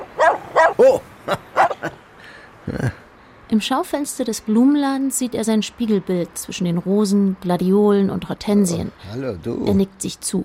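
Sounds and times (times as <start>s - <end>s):
dog barking and yipping: 0.0s - 1.9s
speech: 0.8s - 1.5s, 3.6s - 10.4s.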